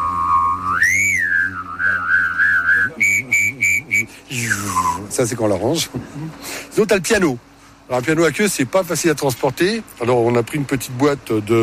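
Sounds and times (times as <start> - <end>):
mouth-blown whistle imitating a lightsaber: 0.0 - 5.1
speech: 5.2 - 11.6.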